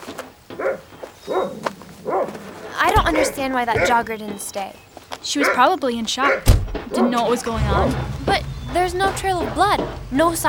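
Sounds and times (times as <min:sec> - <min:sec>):
vicious dog barking: 0:00.6 - 0:02.4, 0:03.0 - 0:04.1, 0:05.3 - 0:08.0
speech: 0:03.2 - 0:10.4.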